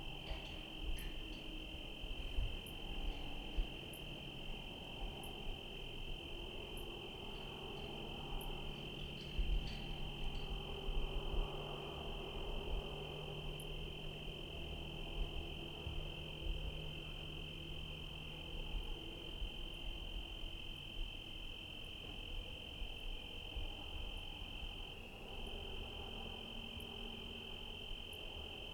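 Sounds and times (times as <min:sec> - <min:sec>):
cricket song at night in Trinity County California: 0:00.0 - 0:28.7
faint brief ticks: 0:00.1 - 0:04.3, 0:06.6 - 0:11.4.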